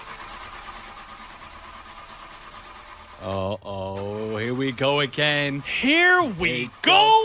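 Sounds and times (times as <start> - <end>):
car engine cranking, failing to start: 0.0 - 7.2
speech: 3.2 - 4.1, 4.7 - 7.2.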